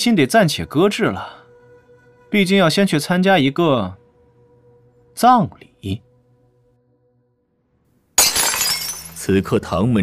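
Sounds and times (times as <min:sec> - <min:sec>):
speech: 0:00.0 - 0:01.4, 0:02.3 - 0:04.0, 0:05.2 - 0:06.0, 0:09.3 - 0:10.0
ceramic teacup shattering on the floor: 0:08.2 - 0:09.3.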